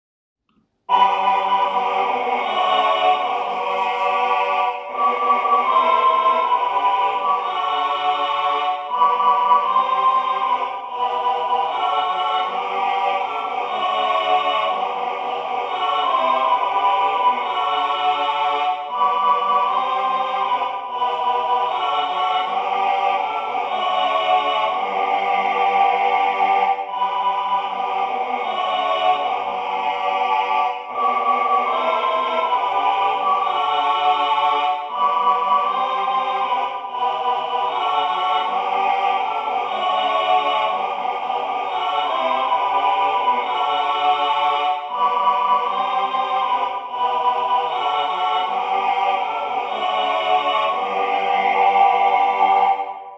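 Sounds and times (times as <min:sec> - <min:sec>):
choir singing: 0:00.9 - 0:53.1.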